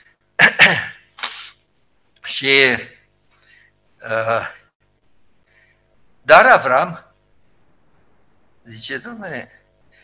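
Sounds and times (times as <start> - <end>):
person coughing: 0.4 - 1.6
speech: 0.6 - 0.9, 2.4 - 3.0, 4.0 - 4.6, 6.3 - 7.1, 8.7 - 9.6.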